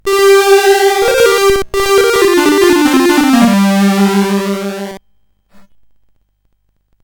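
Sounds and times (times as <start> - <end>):
MOS 8580 SID chip game music: 0.0 - 5.0.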